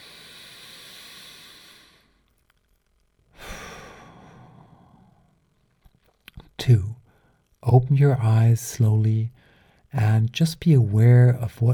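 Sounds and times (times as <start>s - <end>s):
deep breath in at the close of a guided sleep meditation: 0.0s - 2.2s, 3.4s - 5.3s
speech: 6.6s - 7.0s, 7.6s - 11.7s.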